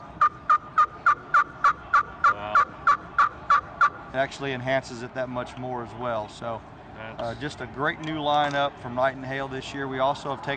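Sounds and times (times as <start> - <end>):
turkey yelps from a walnut pot call worked with a two-piece custom striker: 0.0 - 4.0
speech: 4.1 - 10.5.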